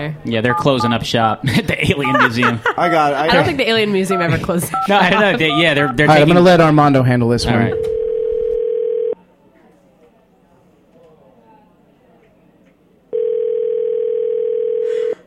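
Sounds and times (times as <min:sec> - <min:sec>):
speech: 0:00.0 - 0:08.0
faint noise: 0:00.0 - 0:15.2
laughter: 0:01.4 - 0:06.1
telephone dial tone: 0:07.8 - 0:09.2, 0:13.1 - 0:15.1.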